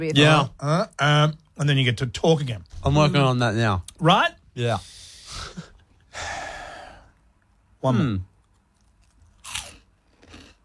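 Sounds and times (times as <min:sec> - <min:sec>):
speech: 0:00.0 - 0:06.4, 0:07.8 - 0:08.3
someone biting into cheese chips: 0:08.5 - 0:10.6.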